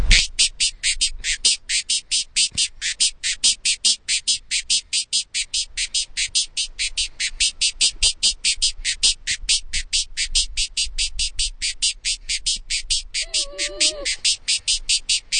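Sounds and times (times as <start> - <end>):
angry hummingbird calling: 0.1 - 15.3.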